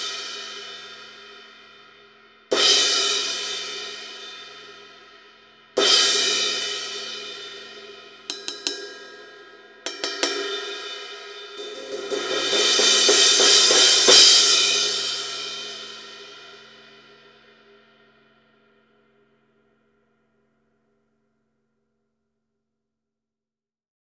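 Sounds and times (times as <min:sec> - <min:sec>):
19 inch crash cymbal: 0:02.5 - 0:19.0.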